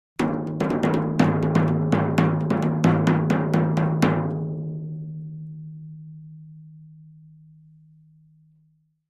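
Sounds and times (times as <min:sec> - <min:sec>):
thin tom drum rhythm: 0:00.2 - 0:05.0.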